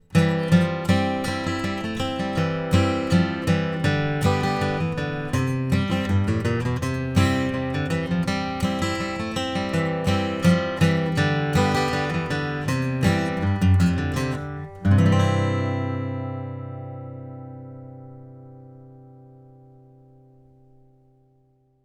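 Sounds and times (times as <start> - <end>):
acoustic guitar: 0.0 - 21.8.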